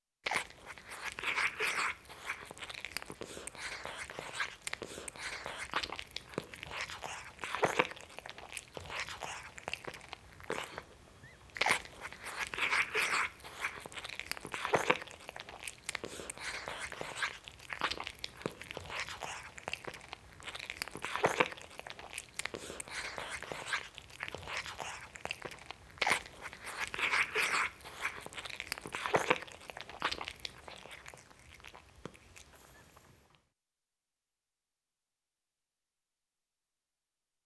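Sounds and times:
cat guzzling greedily: 0.2s - 33.3s.

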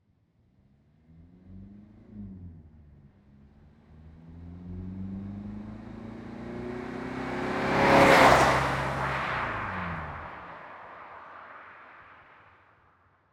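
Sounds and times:
Citroen C2 car passing by: 4.8s - 12.8s.

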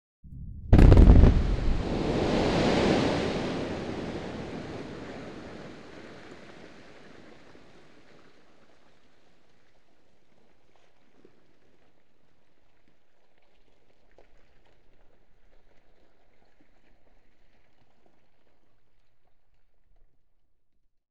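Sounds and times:
quarrying explosion single blast: 0.3s - 6.0s.

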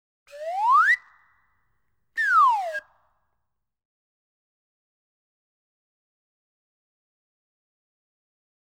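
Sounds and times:
swanee whistle ascending and descending: 0.3s - 1.1s, 2.2s - 2.8s.

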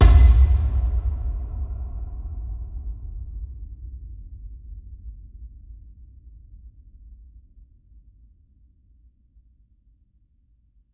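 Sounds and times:
low cinematic impact thump: 0.0s - 5.1s.

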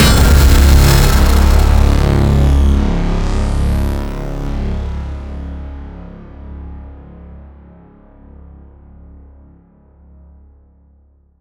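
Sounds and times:
whoosh: 0.0s - 4.2s
impact hit: 0.0s - 5.1s.

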